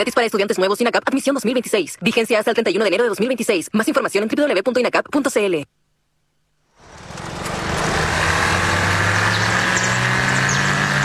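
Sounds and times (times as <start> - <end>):
speech: 0.0 - 5.8
Audi Q5 2.0 TFSI mild hybrid car engine droning: 6.8 - 11.0.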